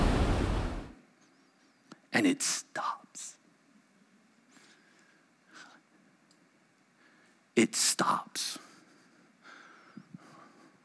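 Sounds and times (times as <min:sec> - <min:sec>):
ocean waves crashing: 0:00.0 - 0:01.0
speech: 0:02.2 - 0:03.4, 0:07.6 - 0:08.6.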